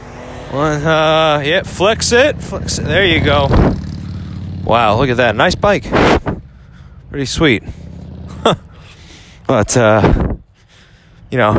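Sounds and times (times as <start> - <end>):
car driving past outside: 0.0 - 5.0
speech: 0.5 - 3.8, 4.6 - 6.2, 7.1 - 7.8, 8.4 - 8.6, 9.5 - 10.2, 11.3 - 11.5.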